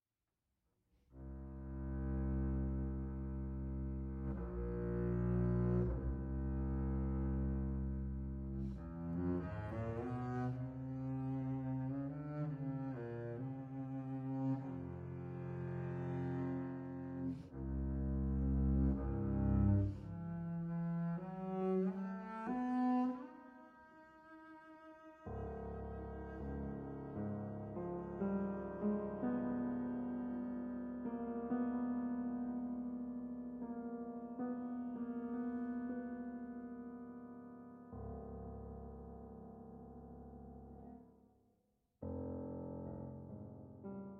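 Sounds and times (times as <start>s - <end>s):
piano: 1.1s - 41.3s, 42.0s - 44.1s
double bass: 1.2s - 23.3s, 25.3s - 29.8s.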